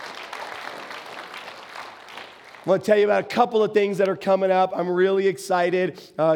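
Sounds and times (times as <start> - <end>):
crowd clapping: 0.0 - 3.1
speech: 2.6 - 6.3.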